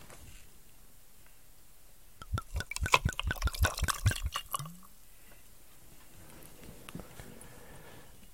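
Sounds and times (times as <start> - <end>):
whisky poured over ice in a glass: 2.2 - 4.9.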